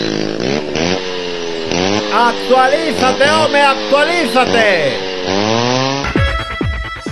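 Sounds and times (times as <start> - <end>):
chainsaw engine idling and revving: 0.0 - 6.5
speech: 2.2 - 5.7.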